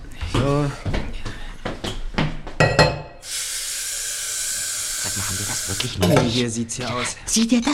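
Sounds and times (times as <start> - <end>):
speech: 0.4 - 1.0, 6.0 - 7.7
dishes and mugs clinking during washing-up: 2.6 - 3.2, 6.0 - 6.4
steady hiss of running water: 3.2 - 6.2.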